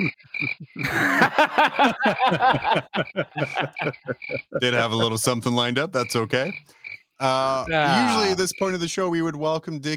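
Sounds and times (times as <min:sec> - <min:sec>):
throaty croaking calls: 0:00.0 - 0:01.2, 0:01.8 - 0:04.6, 0:06.0 - 0:09.0
crickets chirping: 0:00.0 - 0:09.3
speech: 0:00.0 - 0:09.9
laughter: 0:00.4 - 0:05.2.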